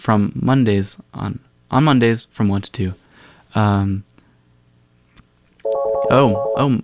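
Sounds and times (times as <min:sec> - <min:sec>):
speech: 0:00.0 - 0:04.1, 0:05.7 - 0:06.8
cell phone electronic ringtone for an incoming call: 0:05.7 - 0:06.7.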